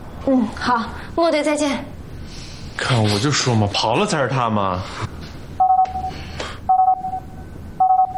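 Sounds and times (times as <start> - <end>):
speech: 0.2 - 1.9, 2.8 - 5.1
emergency contact signal beeping: 5.6 - 8.1.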